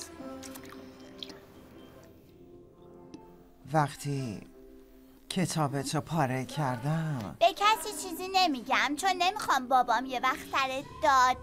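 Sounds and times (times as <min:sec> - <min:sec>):
person chewing food while eating: 0:00.0 - 0:02.2
speech: 0:03.7 - 0:04.5, 0:05.3 - 0:11.4.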